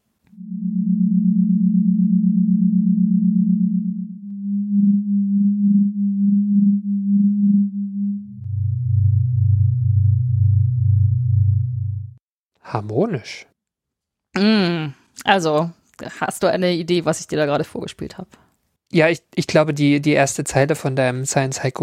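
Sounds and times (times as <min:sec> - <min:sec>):
sonified starquake, seismic waves inside stars turned into low humming tones: 0:00.3 - 0:12.2
speech: 0:12.8 - 0:13.5, 0:14.4 - 0:21.8.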